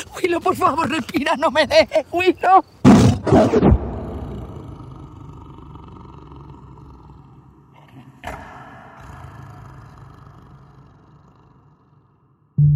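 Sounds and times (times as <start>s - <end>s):
speech: 0.2s - 3.8s
tiger roaring: 3.0s - 12.6s
tiger low rumbling growl: 3.8s - 12.7s.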